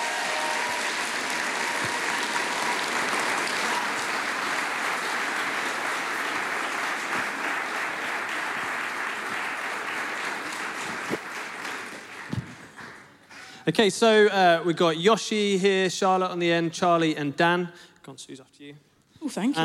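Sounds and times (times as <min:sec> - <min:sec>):
crowd clapping and cheering: 0:00.0 - 0:13.6
speech: 0:13.7 - 0:19.6.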